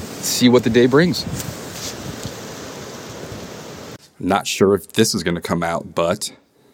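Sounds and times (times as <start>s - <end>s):
broad water-like hiss by a river: 0.0s - 4.0s
cool outdoor breeze by a river rushing across the microphone: 0.0s - 4.0s
speech: 0.2s - 1.6s, 4.2s - 6.4s.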